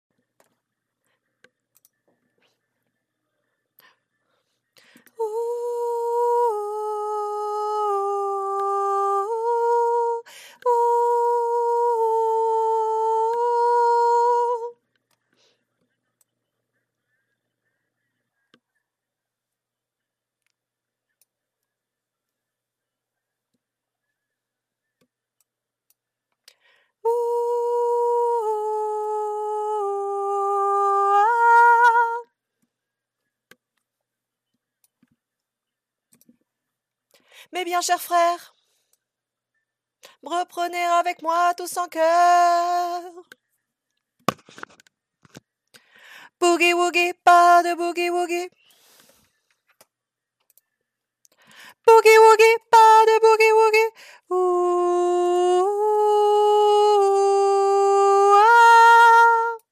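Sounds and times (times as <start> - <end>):
soprano voice: 4.8 - 15.1, 27.0 - 32.4, 37.4 - 38.6, 40.0 - 43.4, 46.2 - 48.6, 51.7 - 59.7.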